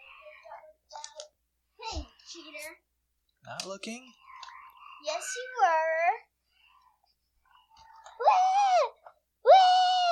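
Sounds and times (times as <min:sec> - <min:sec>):
speech: 0:03.5 - 0:04.2, 0:05.0 - 0:06.3
young child screaming in high-pitched wails: 0:05.0 - 0:06.0, 0:08.2 - 0:10.0.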